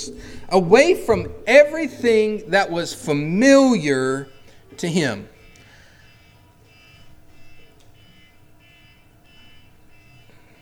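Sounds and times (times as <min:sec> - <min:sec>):
speech: 0:00.0 - 0:05.3
faint electronic buzzer pulsing: 0:02.4 - 0:10.6.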